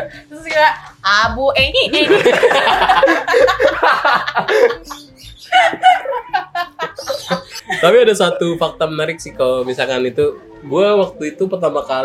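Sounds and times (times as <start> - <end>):
speech: 0.0 - 12.0
laughter: 1.8 - 8.1
chickens clucking and squawking: 4.5 - 7.8.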